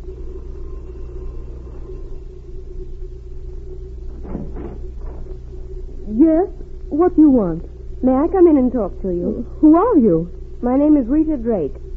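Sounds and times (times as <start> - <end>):
car engine rumbling: 3.9 - 6.8
speech: 6.2 - 11.8.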